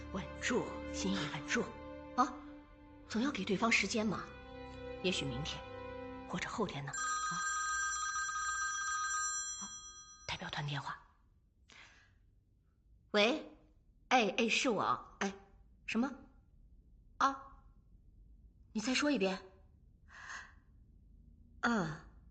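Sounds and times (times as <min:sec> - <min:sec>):
speech: 0:00.1 - 0:02.4, 0:03.1 - 0:04.4, 0:05.0 - 0:05.7, 0:06.3 - 0:07.5, 0:10.6 - 0:11.0, 0:13.1 - 0:13.5, 0:14.1 - 0:16.2, 0:17.2 - 0:17.5, 0:18.8 - 0:19.5, 0:21.6 - 0:22.1
delegation's telephone ringing with steady electronic tone: 0:07.0 - 0:10.3.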